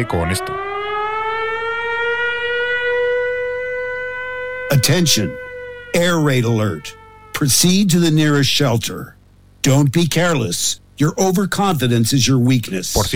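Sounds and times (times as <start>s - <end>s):
speech: 0.0s - 0.7s, 4.8s - 13.1s
air raid siren wailing from a phone alarm app: 0.0s - 8.0s.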